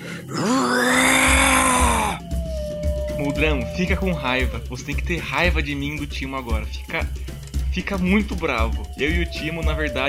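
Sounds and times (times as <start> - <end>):
man shouting a furious battle cry: 0.3 - 2.2
speech: 3.4 - 10.0.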